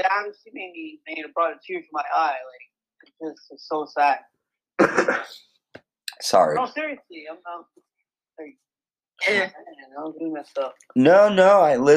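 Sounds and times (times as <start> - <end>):
speech: 0.0 - 5.5, 6.2 - 11.9
sharp throat clearing: 4.8 - 5.4
person coughing: 4.8 - 5.5.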